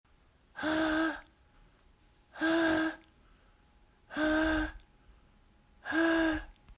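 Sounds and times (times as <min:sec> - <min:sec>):
falsetto voice using false vocal folds: 0:00.6 - 0:01.3, 0:02.4 - 0:03.1, 0:04.1 - 0:04.8, 0:05.8 - 0:06.6.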